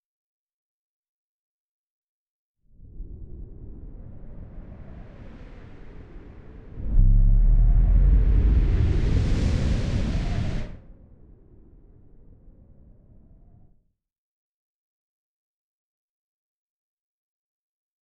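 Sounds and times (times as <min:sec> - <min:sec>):
wild wind with lowpass filter: 0:02.8 - 0:11.7.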